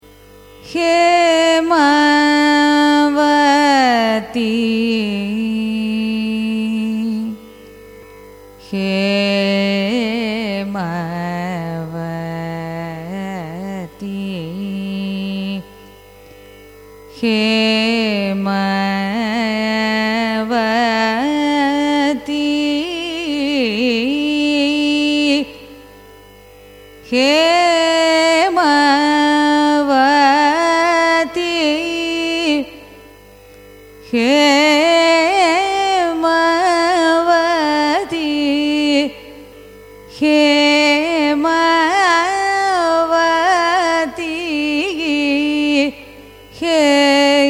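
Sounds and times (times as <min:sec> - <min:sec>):
Carnatic music signature phrase in raga Hemavati: 0:00.0 - 0:47.4.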